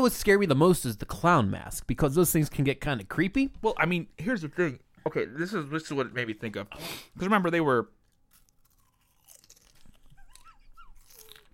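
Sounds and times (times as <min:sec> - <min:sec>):
speech: 0:00.0 - 0:08.0
barbecue potato chips crunching while being eaten: 0:08.0 - 0:11.5.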